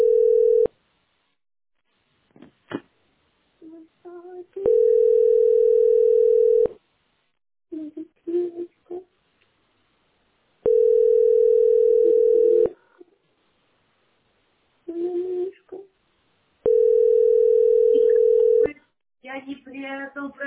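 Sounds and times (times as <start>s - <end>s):
telephone line tone beeps while placing a call: 0.0s - 0.7s, 4.7s - 6.7s, 10.7s - 12.7s, 16.7s - 18.7s.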